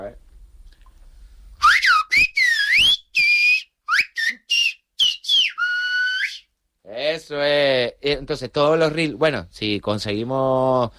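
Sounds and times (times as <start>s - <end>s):
person whistling a tune: 1.6s - 6.5s
speech: 7.2s - 10.9s.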